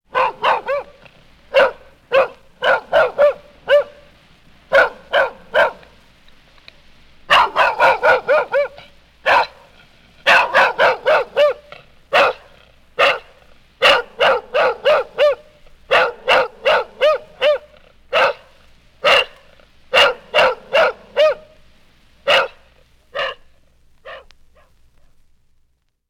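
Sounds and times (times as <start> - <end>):
full grown dog barking: 0.1 - 6.0, 7.3 - 21.6, 22.2 - 24.8.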